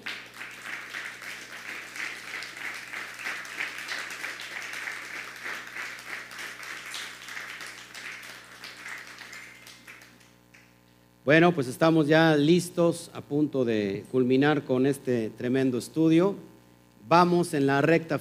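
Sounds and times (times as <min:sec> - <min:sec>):
crowd applauding: 0:00.0 - 0:10.7
speech: 0:11.3 - 0:16.5, 0:17.1 - 0:18.2.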